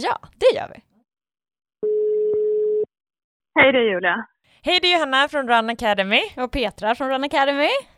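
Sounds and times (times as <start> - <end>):
speech: 0.0 - 0.9, 3.6 - 7.9
telephone ringing tone while placing a call: 1.8 - 2.9.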